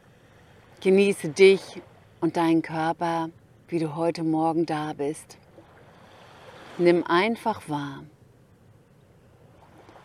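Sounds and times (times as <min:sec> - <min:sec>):
ocean waves at the beach in the morning: 0:00.0 - 0:10.0
speech: 0:00.8 - 0:05.4, 0:06.8 - 0:08.1.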